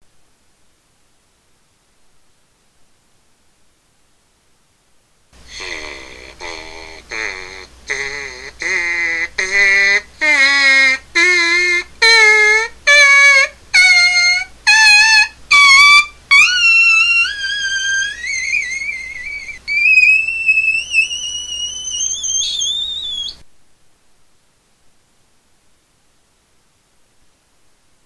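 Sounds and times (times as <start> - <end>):
trumpet mouthpiece buzzing a six octave arpeggio: 5.4 - 23.4.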